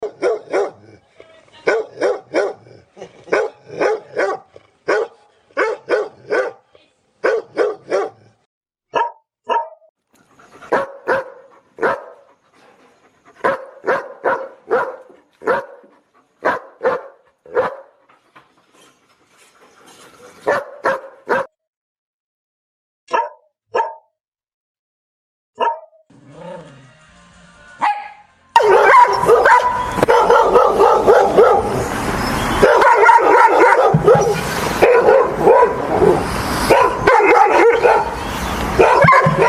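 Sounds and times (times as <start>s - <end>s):
happy dog barking: 0.0s - 1.0s, 1.6s - 6.6s, 7.2s - 9.9s, 10.7s - 12.2s, 13.4s - 17.9s, 20.5s - 21.5s, 23.1s - 24.1s, 25.6s - 26.0s, 27.8s - 31.8s, 32.6s - 38.2s, 38.8s - 39.4s.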